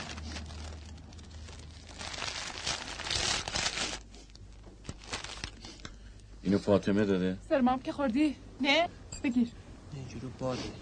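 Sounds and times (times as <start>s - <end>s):
bag opened and paper envelope pulled out, rustling and crinkling: 0.0s - 5.8s
speech: 6.5s - 10.8s.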